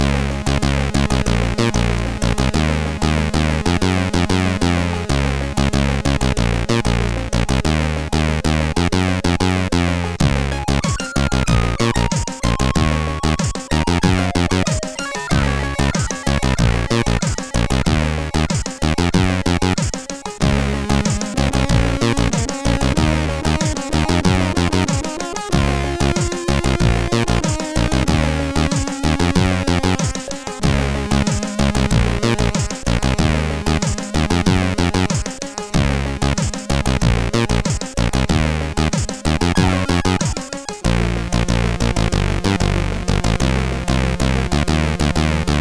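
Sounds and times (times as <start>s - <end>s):
CSG8580R5 sound chip music: 0.0s - 45.6s.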